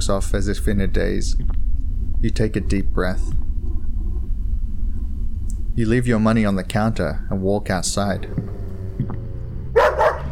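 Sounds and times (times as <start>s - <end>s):
speech: 0.0s - 3.5s, 5.8s - 9.2s
low steady rumble: 0.0s - 10.3s
large dog barking angrily: 9.8s - 10.3s.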